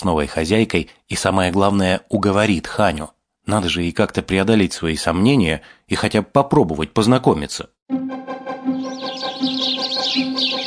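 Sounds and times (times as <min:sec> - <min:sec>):
speech: 0:00.0 - 0:08.1
flock of sparrows chirping noisily in a tree: 0:08.7 - 0:10.6.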